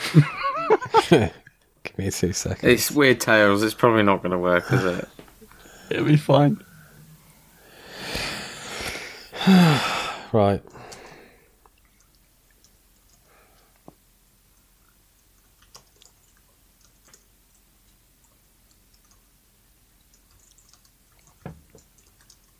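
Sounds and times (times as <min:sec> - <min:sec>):
laughter: 0:00.0 - 0:01.4, 0:04.5 - 0:05.2
speech: 0:00.1 - 0:00.4, 0:01.0 - 0:01.4, 0:02.0 - 0:05.2, 0:05.9 - 0:06.7, 0:09.5 - 0:10.8
typing on a computer keyboard: 0:15.5 - 0:17.6, 0:18.2 - 0:19.3, 0:20.0 - 0:22.5.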